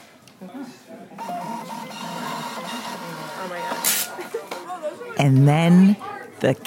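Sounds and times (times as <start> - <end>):
murmur of voices: 0.3 - 6.6
speech: 0.4 - 2.0, 2.9 - 6.6
cash register printing a receipt: 1.2 - 4.6.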